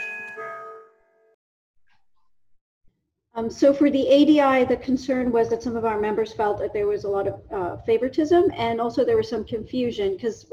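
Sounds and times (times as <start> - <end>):
doorbell chime: 0.0 - 1.3
speech: 3.4 - 10.5.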